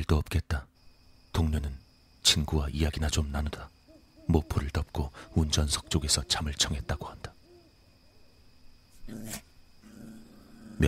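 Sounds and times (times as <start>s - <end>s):
speech: 0.0s - 0.7s, 1.4s - 7.3s, 9.1s - 9.5s
dog growling low toward the sea at night: 9.1s - 10.8s.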